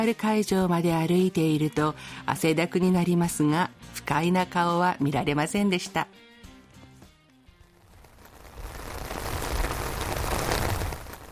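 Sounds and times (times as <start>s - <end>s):
speech: 0.0s - 6.2s
dense steady rain pouring: 7.7s - 11.2s.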